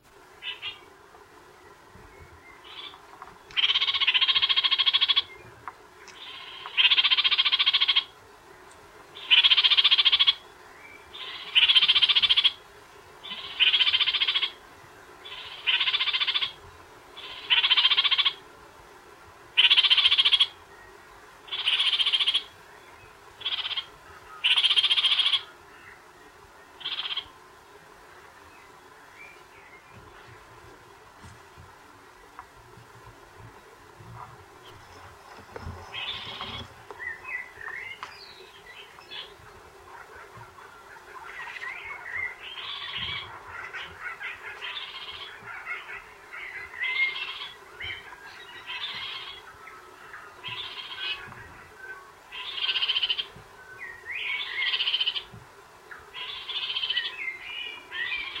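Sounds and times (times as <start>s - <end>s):
kakariki call in Whirinaki rainforest: 0.4s - 0.8s, 3.6s - 5.4s, 6.2s - 8.1s, 9.2s - 10.4s, 11.1s - 12.6s, 13.2s - 14.6s, 15.2s - 16.6s, 17.2s - 18.4s, 19.6s - 20.6s, 21.5s - 22.5s, 23.4s - 25.5s, 26.8s - 27.4s, 35.9s - 38.1s, 39.9s - 49.5s, 50.4s - 51.3s, 52.3s - 53.4s, 54.2s - 55.3s, 56.1s - 58.3s.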